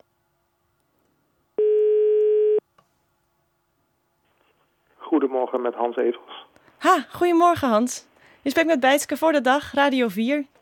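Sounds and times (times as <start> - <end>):
telephone ringback tone of a call to the Netherlands: 1.6 - 2.6
speech: 5.2 - 10.5.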